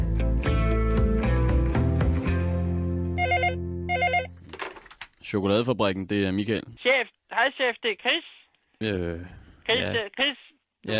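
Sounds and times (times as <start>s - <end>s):
sustained musical bed: 0.0s - 4.5s
telephone ringing in trilling bursts: 3.2s - 4.4s
speech: 5.3s - 10.9s.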